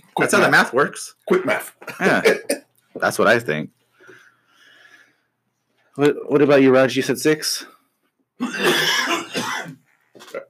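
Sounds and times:
speech: 0:00.2 - 0:03.8, 0:06.0 - 0:07.7, 0:08.4 - 0:09.2
man coughing with rough hacking: 0:01.3 - 0:02.6, 0:08.4 - 0:10.4.

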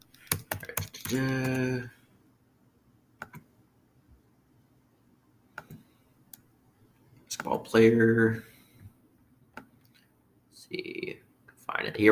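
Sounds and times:
computer keyboard typing a search: 0:00.1 - 0:01.8, 0:03.2 - 0:03.4, 0:05.6 - 0:05.8
speech: 0:01.1 - 0:02.0, 0:07.4 - 0:08.5, 0:10.7 - 0:11.2, 0:11.8 - 0:12.1.

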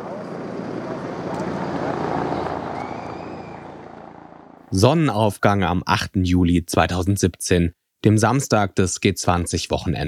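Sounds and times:
helicopter circling overhead with a steady broad rumble: 0:00.0 - 0:04.7
speech: 0:04.7 - 0:10.0.

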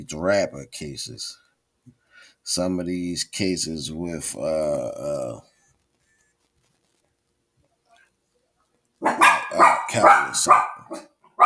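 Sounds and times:
speech: 0:00.0 - 0:01.4, 0:02.2 - 0:05.5, 0:09.0 - 0:11.4
dogs barking: 0:09.0 - 0:11.4.

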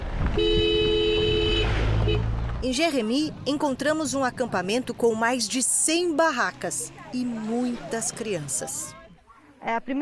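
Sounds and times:
vehicle engine rumbling: 0:00.0 - 0:09.2
car horn honking: 0:00.3 - 0:02.3
speech: 0:02.6 - 0:09.0, 0:09.6 - 0:09.9.

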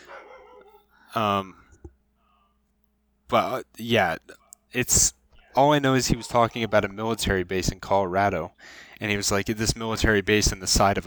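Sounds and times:
dog barking: 0:00.0 - 0:00.8
speech: 0:01.2 - 0:01.6, 0:03.3 - 0:11.0.

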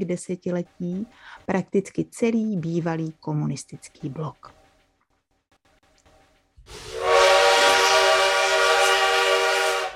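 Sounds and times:
speech: 0:00.0 - 0:04.6
loud sustained train whistle: 0:06.7 - 0:09.9.

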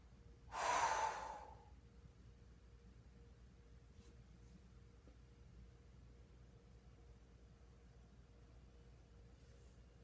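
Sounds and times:
forceful breathy exhale from Kapalabhati yoga breathing: 0:00.5 - 0:01.7.

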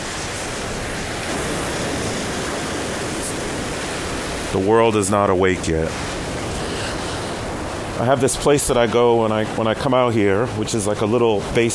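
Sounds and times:
sea waves washing: 0:00.0 - 0:11.7
speech: 0:04.5 - 0:06.1, 0:08.0 - 0:11.7.

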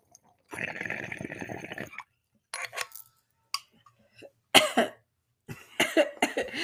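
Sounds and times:
person coughing in small raspy coughs and sharp hacks: 0:04.6 - 0:06.6.

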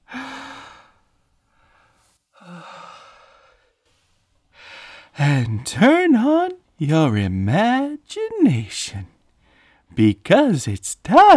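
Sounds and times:
slow deep human breathing: 0:00.0 - 0:05.2, 0:09.4 - 0:09.9
speech: 0:05.2 - 0:09.1, 0:09.9 - 0:11.3.

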